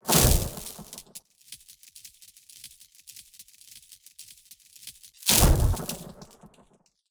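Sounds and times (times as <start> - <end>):
magic lightning shock: 0.1 - 1.0, 5.3 - 6.2.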